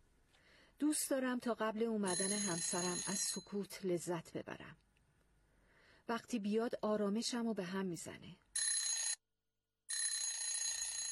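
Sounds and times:
speech: 0:00.8 - 0:04.9, 0:06.1 - 0:08.4
telephone ringing in shrill electronic bursts: 0:02.1 - 0:03.5, 0:08.6 - 0:09.2, 0:09.9 - 0:11.0.

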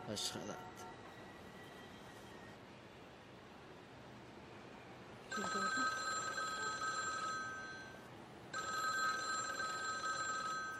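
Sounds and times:
mobile phone ringing with a bright steady electronic tone: 0:05.3 - 0:10.7.

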